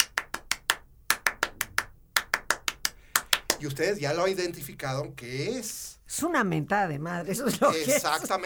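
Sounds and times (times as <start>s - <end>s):
hand claps beating a syncopated huapango rhythm: 0.0s - 3.8s
speech: 3.6s - 8.4s
laughter: 7.4s - 8.4s.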